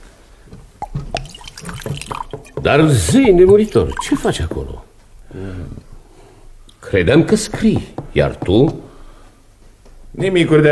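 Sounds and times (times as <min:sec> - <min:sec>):
wine poured from a carafe into a cup: 0:00.8 - 0:04.8
wine splashing and dripping: 0:00.8 - 0:04.8
speech: 0:02.6 - 0:05.8, 0:06.9 - 0:08.8, 0:10.2 - 0:10.7.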